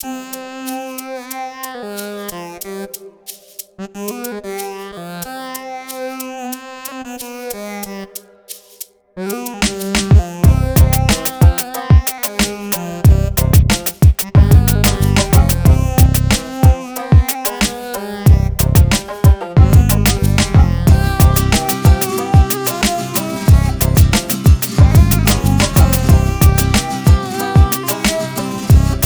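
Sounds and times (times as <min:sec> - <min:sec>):
exotica hip hop beat in C minor: 0:09.3 - 0:29.0.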